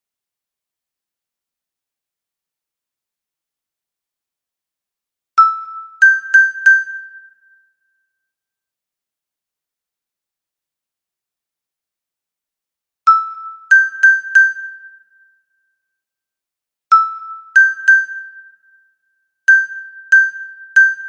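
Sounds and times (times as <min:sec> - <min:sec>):
soprano xylophone: 0:05.4 - 0:07.3, 0:13.1 - 0:15.0, 0:16.9 - 0:18.5, 0:19.5 - 0:21.0.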